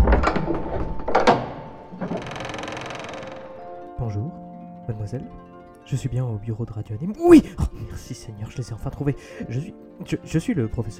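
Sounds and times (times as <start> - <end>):
door mechanism clunking and thudding: 0.0 - 4.0
speech: 5.0 - 10.9.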